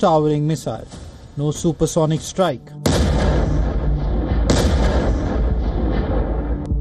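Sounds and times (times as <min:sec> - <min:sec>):
speech: 0:00.0 - 0:02.8
Soviet-era FAB-3000 bomb blast tearing through trenches, bunkers and buildings: 0:02.9 - 0:06.7.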